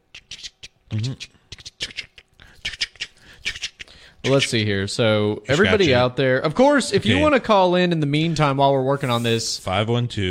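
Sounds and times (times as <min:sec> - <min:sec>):
person vocally mimicking scratching a lottery scratch-off ticket: 0:00.1 - 0:04.4
speech: 0:00.9 - 0:01.4, 0:04.2 - 0:10.2.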